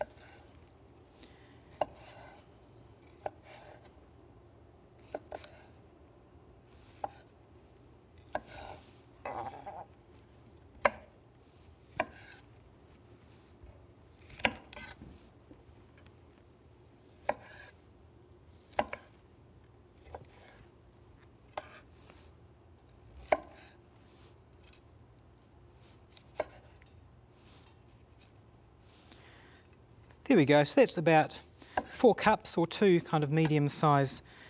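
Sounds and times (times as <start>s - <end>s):
knife chopping broccoli florets on a cutting board: 1.7s - 2.4s, 3.0s - 3.9s, 5.0s - 5.7s, 6.8s - 7.3s, 8.2s - 9.9s, 10.8s - 11.1s, 11.9s - 12.4s, 14.2s - 15.2s, 17.2s - 17.8s, 18.6s - 19.1s, 20.0s - 20.6s, 21.5s - 21.8s, 23.2s - 23.8s, 26.1s - 26.8s, 31.7s - 32.0s
speech: 30.3s - 34.4s.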